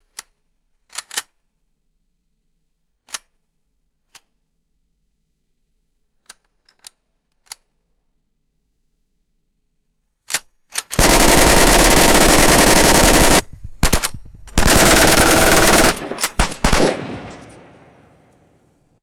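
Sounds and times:
machine gun cocking: 11.0s - 18.4s.

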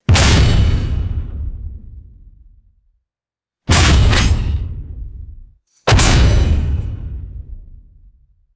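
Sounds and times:
heavy designed cinematic gun impacts: 0.1s - 1.9s, 3.7s - 5.2s, 5.9s - 7.6s.

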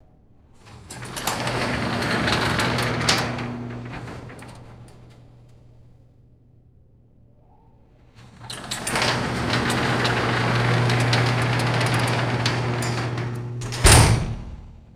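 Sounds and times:
metal garage door opening and closing: 0.6s - 5.5s, 8.2s - 14.9s.

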